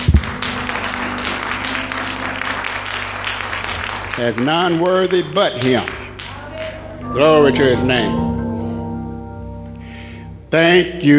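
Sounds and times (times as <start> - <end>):
large audience clapping in sustained dense applause: 0.0 - 6.9
speech: 4.2 - 6.0, 7.1 - 8.2, 10.5 - 11.1.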